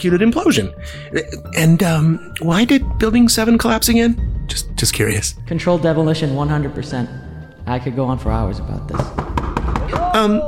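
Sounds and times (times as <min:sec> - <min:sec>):
speech: 0:00.0 - 0:10.4
knocking on a front door: 0:08.9 - 0:10.2.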